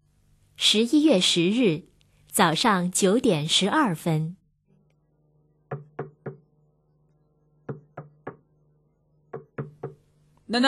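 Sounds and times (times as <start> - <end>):
speech: 0.6 - 4.4
knocking on a hotel bedroom door: 5.7 - 6.5, 7.7 - 8.5, 9.3 - 10.1.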